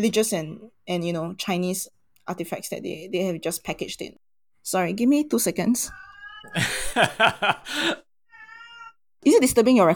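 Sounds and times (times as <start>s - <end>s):
speech: 0.0s - 8.0s, 9.2s - 9.9s
cat yowling and meowing loudly: 5.9s - 6.6s, 8.3s - 9.0s
laughter: 6.6s - 8.0s.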